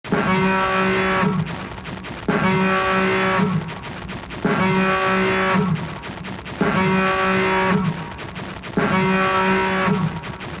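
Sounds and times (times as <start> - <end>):
mothership alarm: 0.1 - 1.5, 2.3 - 3.7, 4.4 - 6.0, 6.6 - 8.1, 8.8 - 10.4.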